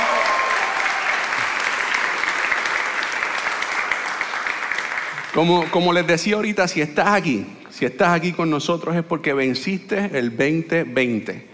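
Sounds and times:
audience applauding: 0:00.0 - 0:06.3
speech: 0:05.4 - 0:11.5.

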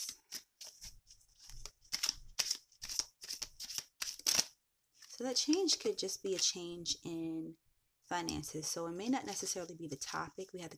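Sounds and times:
tarot cards drawn and handled from a deck: 0:00.0 - 0:06.5
speech: 0:05.2 - 0:10.7.

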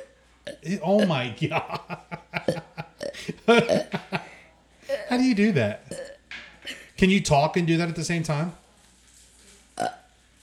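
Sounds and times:
burp: 0:00.0 - 0:01.1, 0:02.6 - 0:04.1, 0:05.8 - 0:06.3, 0:09.8 - 0:10.1
speech: 0:00.6 - 0:02.1, 0:03.2 - 0:04.2, 0:05.1 - 0:05.9, 0:07.0 - 0:08.6, 0:09.8 - 0:10.0
laughter: 0:01.3 - 0:04.4.

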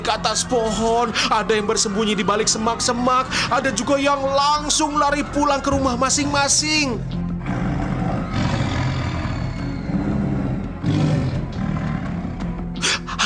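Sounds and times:
speech: 0:00.1 - 0:07.2
tiger growling and roaring: 0:07.4 - 0:12.6.

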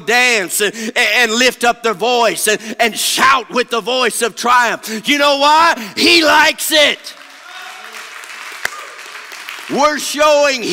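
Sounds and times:
speech: 0:00.0 - 0:07.2, 0:09.7 - 0:10.7
crowd clapping hands in worship: 0:06.8 - 0:10.7.

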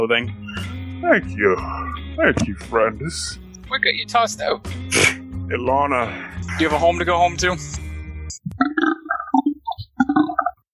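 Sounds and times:
speech: 0:00.0 - 0:07.9
short low croaky burp: 0:08.6 - 0:09.4.

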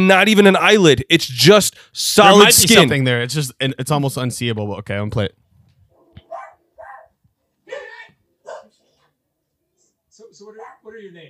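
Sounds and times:
speech: 0:00.0 - 0:05.4
man barking like a dog: 0:06.2 - 0:08.8, 0:10.6 - 0:10.9.

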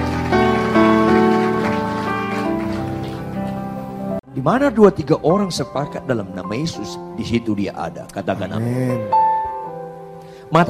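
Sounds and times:
audience applauding loudly: 0:00.0 - 0:04.0
speech: 0:04.4 - 0:09.3, 0:10.5 - 0:10.6.

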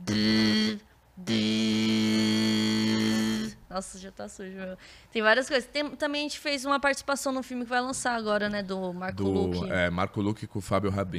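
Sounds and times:
person beatboxing the electric buzz of a tattoo machine: 0:00.0 - 0:03.7
speech: 0:03.8 - 0:11.1.

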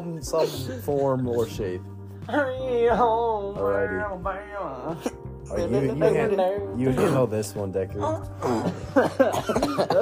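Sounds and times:
speech: 0:00.1 - 0:10.0
person clearing throat: 0:06.9 - 0:07.4, 0:08.4 - 0:10.0.

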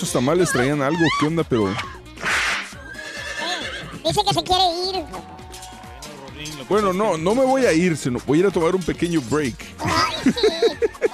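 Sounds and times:
speech: 0:00.0 - 0:02.0, 0:04.0 - 0:05.4, 0:06.4 - 0:11.1
horse with a stomach ache whinnying: 0:00.6 - 0:04.1
laughter: 0:09.9 - 0:11.1.

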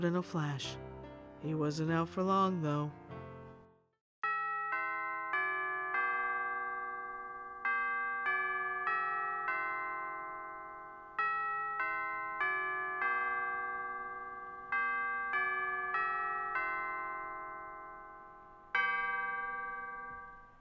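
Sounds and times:
speech: 0:00.0 - 0:03.0
clock chiming a four-phrase bell melody: 0:04.2 - 0:20.5.

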